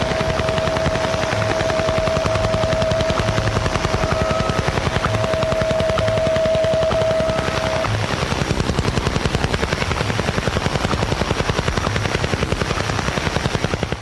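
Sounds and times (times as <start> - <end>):
thin steady whistle tone: 0.0 - 8.0
Russian Woodpecker shortwave radio signal rapid tapping pulse: 0.0 - 13.9.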